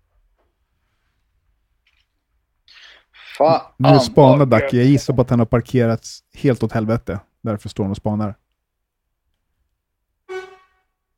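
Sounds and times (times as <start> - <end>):
speech: 3.4 - 8.4
car horn honk: 10.3 - 11.0.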